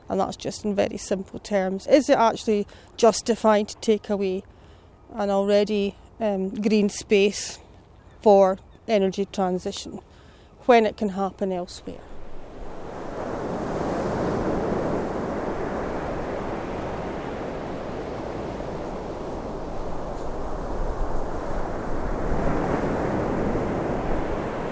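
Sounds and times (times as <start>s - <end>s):
speech: 0.1s - 7.6s, 8.2s - 12.1s
ocean surf washing against the shore: 11.9s - 24.7s
wind buffeting: 11.9s - 24.7s.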